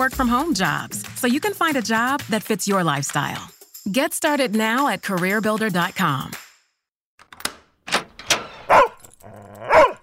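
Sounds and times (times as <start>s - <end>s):
speech: 0.0s - 6.4s
dog barking: 8.7s - 10.0s.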